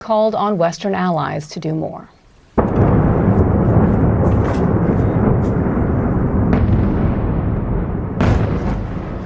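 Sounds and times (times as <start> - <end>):
speech: 0.0 - 2.2
heavy explosions from a missile and drone strike: 2.6 - 9.2
sharper blasts from a missile and drone strike: 2.6 - 9.2.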